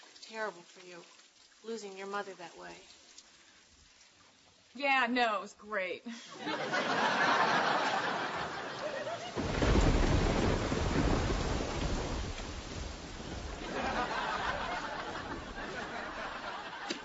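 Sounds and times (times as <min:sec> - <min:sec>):
steady hissing rain: 0:00.0 - 0:17.0
speech: 0:00.3 - 0:03.0, 0:04.8 - 0:08.3
laughter: 0:06.1 - 0:09.6, 0:13.6 - 0:17.0
deep rumble of thunder: 0:07.6 - 0:16.9.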